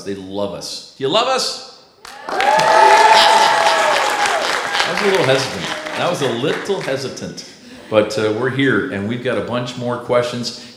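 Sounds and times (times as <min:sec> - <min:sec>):
speech: 0:00.0 - 0:01.7, 0:04.9 - 0:10.7
cheering and whooping voices: 0:02.0 - 0:07.2
crowd applause: 0:02.0 - 0:07.4
laughter: 0:02.3 - 0:08.8.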